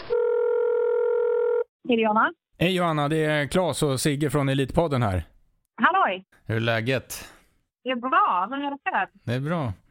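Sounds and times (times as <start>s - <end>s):
telephone steady ringing tone: 0.1s - 1.7s
speech: 1.9s - 9.8s.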